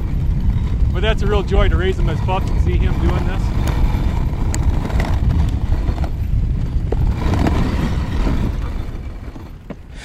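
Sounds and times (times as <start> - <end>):
dog sled runners scraping on an icy trail: 0.0 - 10.0
wind buffeting: 0.0 - 10.0
speech: 1.0 - 3.8.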